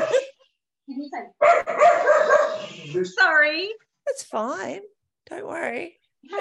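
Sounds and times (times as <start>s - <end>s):
speech: 1.0s - 2.0s, 2.8s - 6.3s
dog barking and yipping excitedly: 1.4s - 2.7s.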